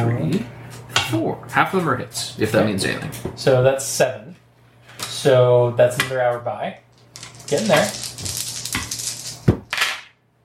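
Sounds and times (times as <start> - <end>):
speech: 0.3 - 4.4, 5.2 - 6.8, 7.5 - 8.4
dice rolling on a hard surface during a tabletop role-playing game: 7.0 - 9.9.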